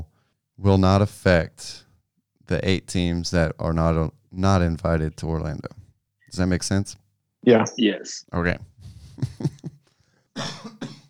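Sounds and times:
speech: 0:00.6 - 0:01.8, 0:02.5 - 0:09.6
person coughing from a lingering COVID cough: 0:10.4 - 0:11.0.

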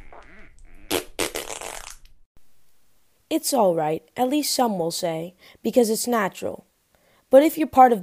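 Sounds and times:
fart: 0:00.0 - 0:02.1
speech: 0:03.3 - 0:06.7, 0:07.3 - 0:08.0.

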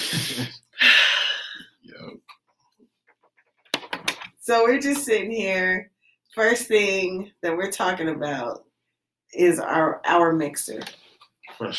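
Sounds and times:
person sniffing against the microphone: 0:00.0 - 0:01.6
speech: 0:00.1 - 0:00.6, 0:04.5 - 0:08.7, 0:09.3 - 0:11.0, 0:11.6 - 0:11.7.

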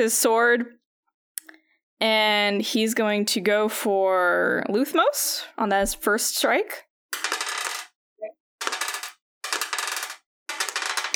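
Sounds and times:
speech: 0:00.0 - 0:00.8, 0:02.0 - 0:06.9
handfuls of dice clattering across a hard surface: 0:07.2 - 0:07.9, 0:08.6 - 0:11.1.

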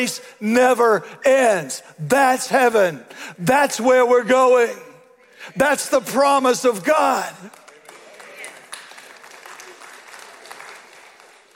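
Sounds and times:
speech: 0:00.0 - 0:07.6
polite moderate audience applause: 0:07.4 - 0:11.5.

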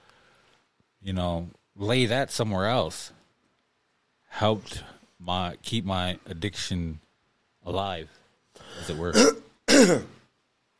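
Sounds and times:
speech: 0:01.0 - 0:03.2, 0:04.3 - 0:07.0, 0:07.6 - 0:10.2
throat clearing: 0:08.9 - 0:10.2.

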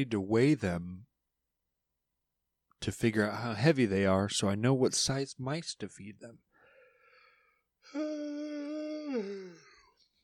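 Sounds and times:
speech: 0:00.0 - 0:01.0, 0:02.8 - 0:06.5, 0:07.8 - 0:08.4, 0:09.1 - 0:09.7
drawn-out human yawn: 0:07.9 - 0:09.9.

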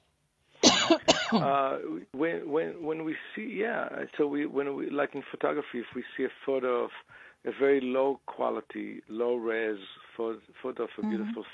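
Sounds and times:
person coughing: 0:00.6 - 0:01.6
voiced rumbling throat clearing: 0:00.6 - 0:01.8
speech: 0:00.9 - 0:11.5.

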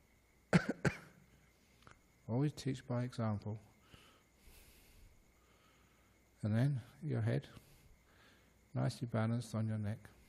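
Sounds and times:
faint cough: 0:00.5 - 0:01.2
speech: 0:02.3 - 0:03.7, 0:06.4 - 0:07.7, 0:08.7 - 0:10.2.

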